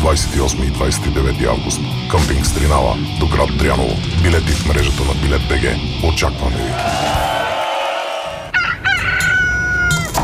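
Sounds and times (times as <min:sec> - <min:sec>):
speech: 0:00.1 - 0:07.4
rooster crowing: 0:06.8 - 0:10.2.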